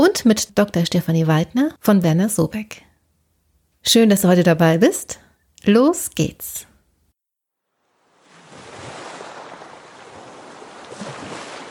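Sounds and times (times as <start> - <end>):
speech: 0.2 - 2.9, 3.8 - 6.7
faint breeze at a fjord near Brevik in southern Norway: 7.6 - 11.6
fjord water washing and lapping in small waves near Brevik in southern Norway: 7.8 - 11.6.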